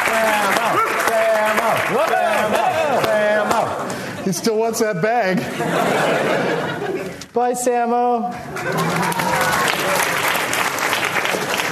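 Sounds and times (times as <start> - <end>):
audience clapping at a live show: 0.0 - 4.0, 8.5 - 11.7
laughter: 0.0 - 7.3, 8.5 - 10.5
speech: 4.3 - 9.2.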